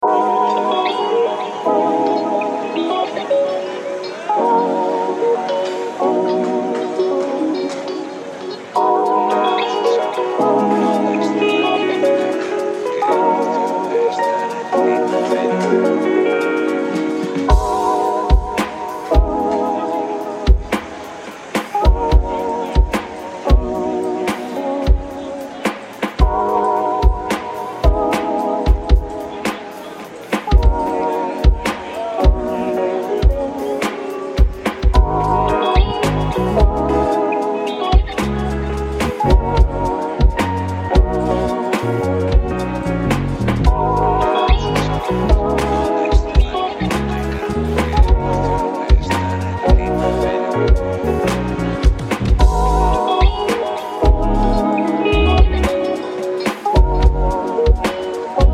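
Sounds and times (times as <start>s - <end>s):
lofi music: 0.0s - 58.5s.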